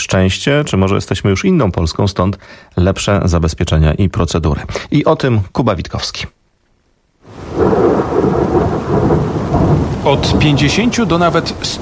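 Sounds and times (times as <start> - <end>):
speech: 0.1 - 6.4, 10.0 - 11.7
heavy downpour: 7.2 - 11.7.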